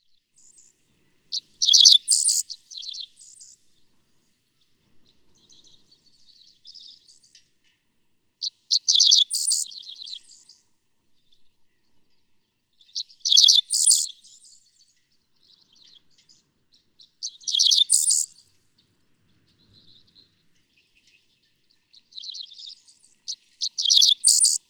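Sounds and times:
dickcissel calling in Missouri: 0:01.3 - 0:02.5, 0:08.7 - 0:09.7, 0:13.2 - 0:14.1, 0:17.3 - 0:18.3, 0:23.3 - 0:24.6.

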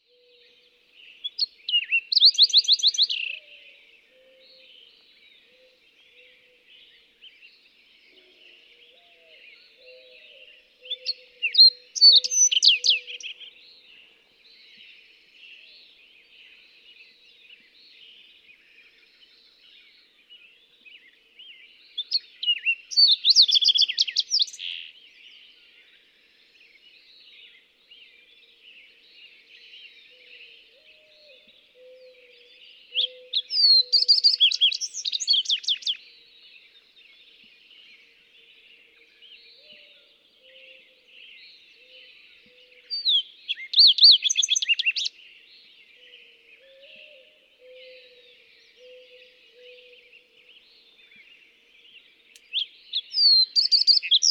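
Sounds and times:
Fox Sparrow calling: 0:01.2 - 0:03.4, 0:09.8 - 0:13.5, 0:22.0 - 0:24.9, 0:32.9 - 0:36.0, 0:41.7 - 0:45.2, 0:52.3 - 0:54.2.

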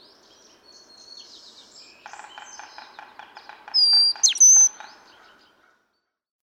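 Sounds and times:
yellow-bellied sapsucker drumming: 0:02.1 - 0:05.2
white-breasted nuthatch song of quick nasal repeated notes: 0:03.8 - 0:04.9
male brown-headed cowbird flight whistles: 0:04.0 - 0:04.7.

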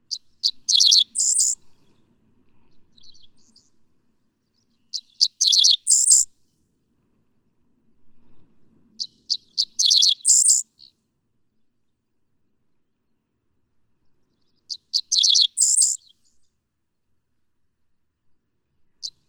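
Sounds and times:
dickcissel singing in Missouri: 0:00.7 - 0:01.6, 0:05.4 - 0:06.2, 0:09.8 - 0:10.6, 0:15.1 - 0:16.0.

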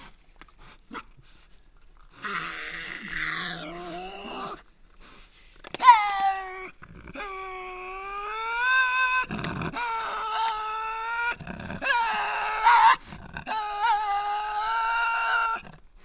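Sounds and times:
Tasmanian devil screeching inside an enclosure: 0:02.2 - 0:04.6, 0:05.6 - 0:15.8.

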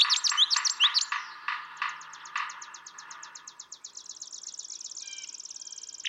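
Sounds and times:
male brown thrasher long song sequence: 0:00.0 - 0:03.9.

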